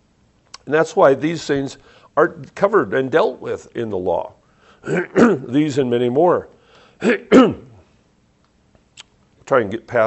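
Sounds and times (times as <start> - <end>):
speech: 0.7 - 7.7, 9.5 - 10.0
man clearing his throat: 4.8 - 5.5, 7.0 - 7.8.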